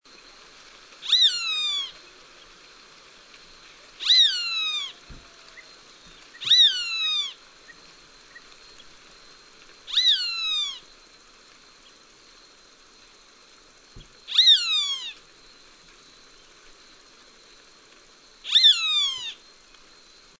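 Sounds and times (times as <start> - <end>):
Buteo magnirostris calling: 1.0 - 2.0, 4.0 - 8.9, 9.9 - 10.9, 14.0 - 15.2, 18.5 - 19.4.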